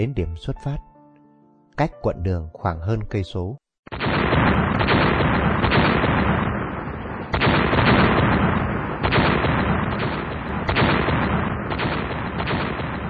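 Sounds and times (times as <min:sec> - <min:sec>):
speech: 0:00.0 - 0:00.9, 0:01.8 - 0:03.6
booming artillery blasts: 0:03.9 - 0:13.0
crackling gunfire: 0:03.9 - 0:13.0.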